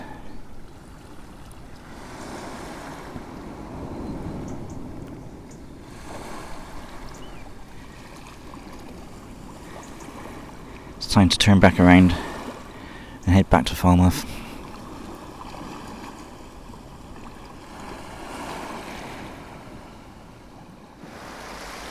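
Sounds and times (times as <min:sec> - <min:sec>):
lapping water on the shoreline at Helford Passage: 0:00.0 - 0:01.9, 0:06.4 - 0:19.2
low hum of boats: 0:00.0 - 0:21.8
wind rumble on the beach at Helford Passage: 0:00.0 - 0:21.8
speech: 0:11.1 - 0:12.2, 0:13.3 - 0:14.4.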